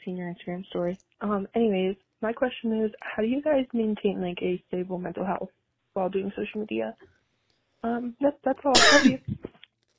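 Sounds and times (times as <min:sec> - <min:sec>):
speech: 0:00.0 - 0:07.2, 0:07.8 - 0:09.5
sharp raspy cough: 0:08.8 - 0:09.4
short voiced sounds: 0:08.8 - 0:09.4.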